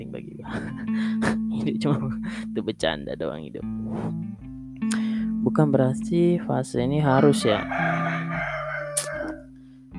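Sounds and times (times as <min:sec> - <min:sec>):
speech: 0:00.0 - 0:08.3
laughter: 0:00.5 - 0:02.4
rooster crowing: 0:07.1 - 0:09.6.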